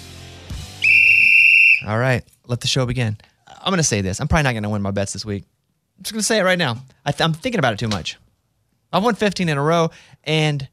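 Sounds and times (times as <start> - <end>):
loud piercing whistle blast: 0.8 - 1.9
speech: 1.8 - 8.3, 8.9 - 10.7.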